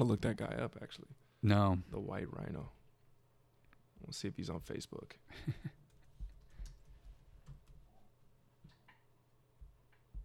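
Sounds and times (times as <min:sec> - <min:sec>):
speech: 0:00.0 - 0:02.8, 0:04.0 - 0:05.8
typing on a computer keyboard: 0:05.9 - 0:07.9.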